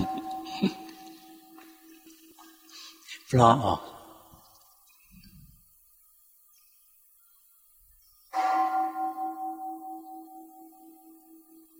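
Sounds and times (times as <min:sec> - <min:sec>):
temple bell struck with a wooden striker: 0:00.0 - 0:03.0, 0:08.4 - 0:11.7
speech: 0:00.6 - 0:00.8, 0:03.3 - 0:03.9.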